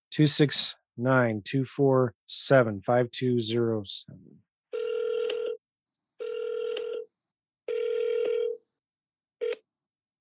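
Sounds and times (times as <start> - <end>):
speech: 0.2 - 4.4
ringback tone of an outgoing phone call: 4.8 - 5.6, 6.2 - 7.1, 7.7 - 8.6.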